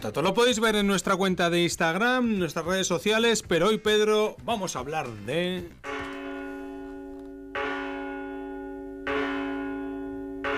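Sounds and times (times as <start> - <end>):
speech: 0.0 - 5.9
large cathedral church bells tolling: 5.8 - 10.5.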